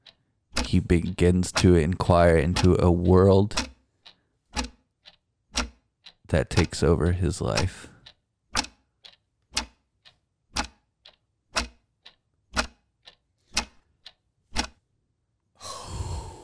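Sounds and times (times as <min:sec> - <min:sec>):
clock ticking: 0:00.0 - 0:14.8
speech: 0:00.7 - 0:03.7, 0:06.3 - 0:07.9
breathy rush of noise: 0:15.6 - 0:16.4.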